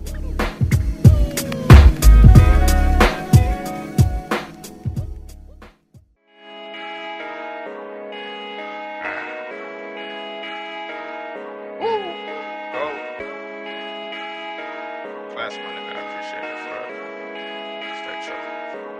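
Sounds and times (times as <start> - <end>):
song played by a DJ with heavy booming bass and bell-like tones: 0.0 - 5.7.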